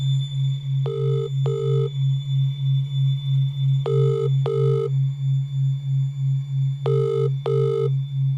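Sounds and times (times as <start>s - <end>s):
steady low pulsing hum: 0.0s - 8.3s
mobile phone ringback tone in double bursts: 0.8s - 1.9s, 3.9s - 4.9s, 6.9s - 7.9s.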